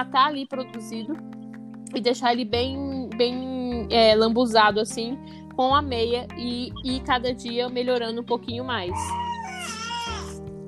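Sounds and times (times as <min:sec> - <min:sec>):
speech: 0:00.0 - 0:09.8
just-woken baby giving short whiny cries: 0:08.9 - 0:10.4
baby farting: 0:09.1 - 0:10.4.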